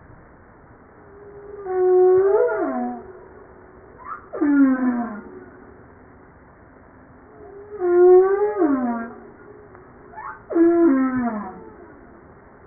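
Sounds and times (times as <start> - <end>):
humpback whale singing: 1.0 - 5.8, 7.3 - 12.3.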